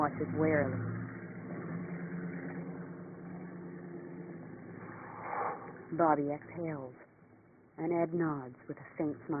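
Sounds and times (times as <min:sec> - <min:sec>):
speech: 0:00.0 - 0:01.0, 0:05.9 - 0:07.0, 0:07.8 - 0:09.3
car engine rumbling as the car drives away: 0:00.0 - 0:09.3.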